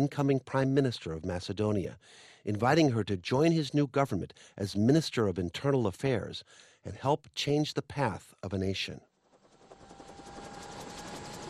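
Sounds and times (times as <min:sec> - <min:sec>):
speech: 0:00.0 - 0:09.1
government helicopter lifting off from dead grass: 0:09.2 - 0:11.4.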